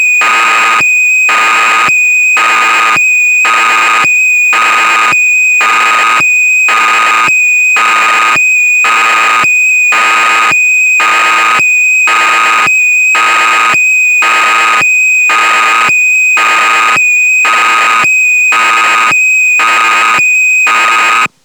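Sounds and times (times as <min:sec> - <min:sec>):
synth sounds: 0:00.2 - 0:21.3.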